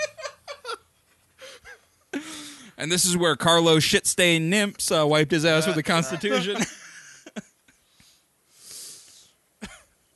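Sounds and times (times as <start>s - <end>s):
laughter: 0.0s - 0.8s, 5.6s - 7.4s
speech: 2.8s - 6.8s
person snorting and sniffing: 8.0s - 9.4s
person blowing their nose: 8.6s - 9.3s.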